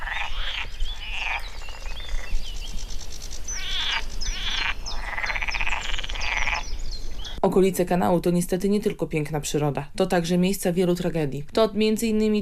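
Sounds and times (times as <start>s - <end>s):
chorus of frogs croaking near a canal: 0.0s - 7.4s
speech: 7.4s - 12.3s.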